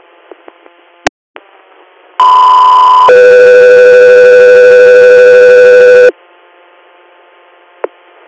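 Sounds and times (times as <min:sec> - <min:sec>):
loud two-part radio dispatch alert tone: 0:02.2 - 0:06.1.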